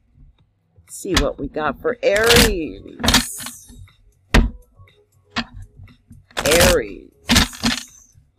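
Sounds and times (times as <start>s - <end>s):
speech: 0.9s - 3.2s
deck of tarot cards being shuffled for a reading: 7.3s - 8.0s.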